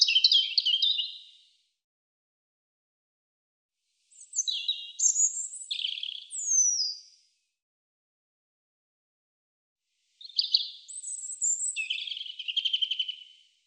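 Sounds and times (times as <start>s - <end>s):
European robin singing: 0.0s - 1.4s, 4.1s - 7.2s, 10.2s - 13.6s.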